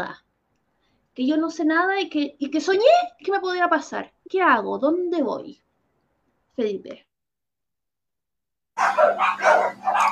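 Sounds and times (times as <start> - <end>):
speech: 0.0 - 0.2, 1.2 - 5.6, 6.6 - 7.1, 8.8 - 10.0
dogs barking: 8.8 - 10.1.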